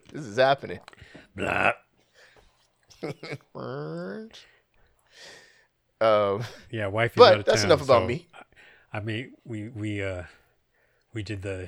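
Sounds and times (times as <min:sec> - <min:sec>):
speech: 0:00.1 - 0:01.8, 0:03.0 - 0:04.5, 0:06.0 - 0:10.4, 0:11.1 - 0:11.6
loud drawn-out burp: 0:01.4 - 0:01.9.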